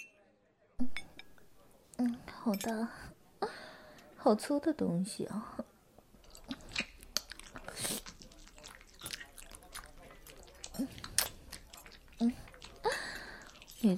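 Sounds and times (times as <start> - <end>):
speech: 2.0 - 3.1, 4.2 - 5.7
chewing candied hawthorn on a skewer: 6.1 - 13.9
moist mouth sounds: 6.2 - 13.9.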